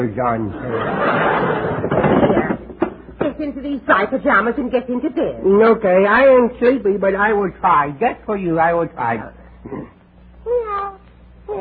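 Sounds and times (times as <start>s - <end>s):
speech: 0.0s - 2.6s, 3.2s - 10.6s
laughter: 0.5s - 2.5s
person imitating a cat meow: 10.5s - 11.5s.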